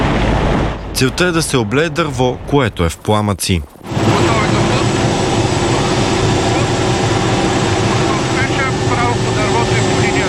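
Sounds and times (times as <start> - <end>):
speech: 1.0 - 3.8
military helicopter flying overhead: 3.7 - 10.2.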